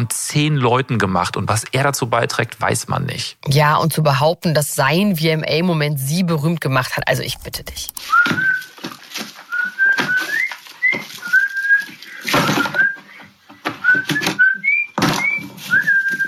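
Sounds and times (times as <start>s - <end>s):
speech: 0.0s - 8.7s
man whistling a short wandering tune: 8.1s - 8.7s, 9.5s - 16.2s.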